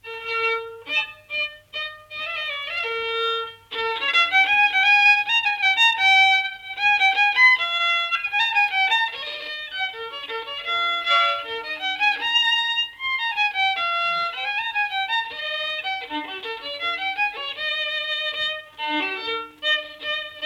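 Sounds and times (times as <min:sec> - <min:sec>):
folk violin from Ruhnu: 0:00.0 - 0:20.4.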